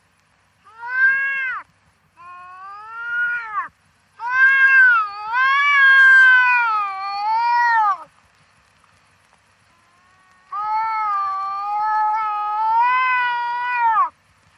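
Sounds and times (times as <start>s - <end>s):
wildcat meowing and caterwauling: 0.6s - 1.6s, 2.2s - 8.1s, 9.7s - 14.1s.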